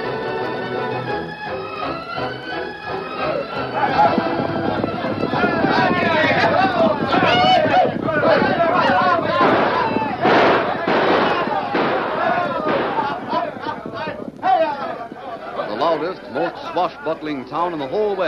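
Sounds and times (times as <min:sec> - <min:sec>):
busy background of voices and commotion: 0:00.0 - 0:18.2
rattle of gunshots in a Wild West town: 0:09.4 - 0:13.4
speech: 0:16.8 - 0:18.2.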